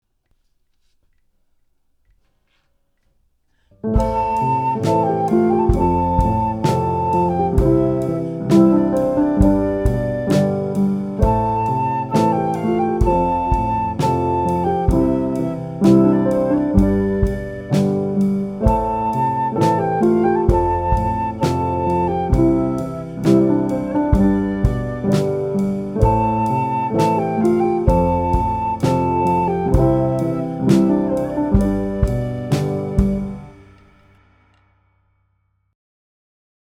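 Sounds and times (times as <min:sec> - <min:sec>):
studio-recorded song with drums: 0:04.0 - 0:34.6.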